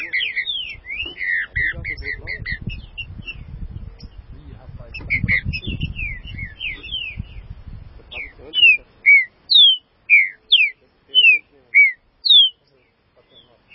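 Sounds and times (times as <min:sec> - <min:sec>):
green-winged saltator song of clear sweet whistled notes: 0:00.0 - 0:04.2, 0:04.9 - 0:13.7
low rumbling noise: 0:00.0 - 0:12.3.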